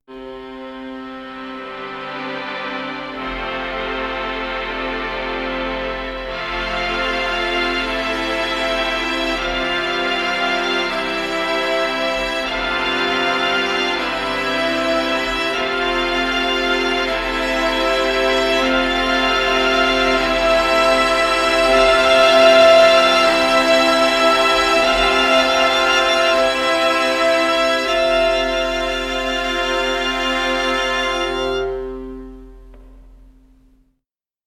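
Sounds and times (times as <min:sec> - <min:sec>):
strings playing: 0:00.1 - 0:33.2.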